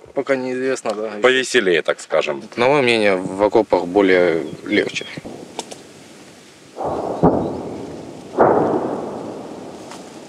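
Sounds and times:
speech: 0:00.2 - 0:05.3
sharp crack: 0:04.4 - 0:10.2
artillery shell impacts near Bakhmut, Ukraine: 0:06.8 - 0:10.2.

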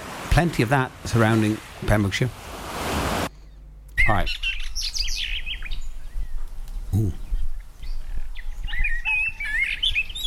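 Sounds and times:
speech: 0:00.4 - 0:02.4, 0:04.0 - 0:04.6, 0:07.0 - 0:07.2
several birds singing and chirping in the morning: 0:03.3 - 0:10.2.

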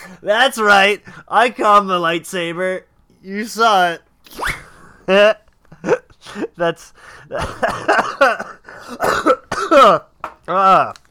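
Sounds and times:
speech: 0:00.2 - 0:11.0
person laughing: 0:04.5 - 0:10.6
person coughing: 0:07.4 - 0:10.1.

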